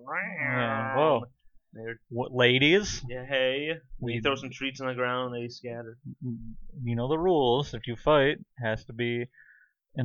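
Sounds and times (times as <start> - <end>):
person imitating a cat yowling: 0.0 - 1.2
speech: 0.1 - 10.0.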